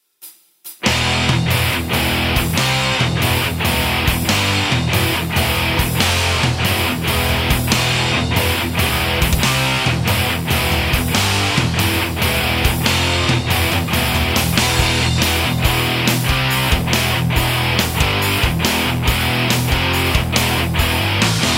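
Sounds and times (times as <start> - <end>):
metal: 0.9 - 21.5.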